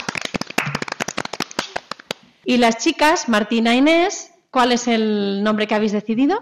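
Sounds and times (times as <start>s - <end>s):
small group clapping: 0.0s - 2.6s
speech: 2.4s - 6.3s.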